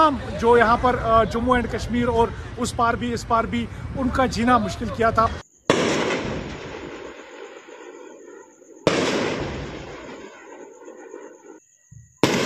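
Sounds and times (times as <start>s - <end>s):
speech: 0.1s - 5.4s
heavy explosions echoing over an open city: 5.7s - 7.5s, 8.9s - 10.3s.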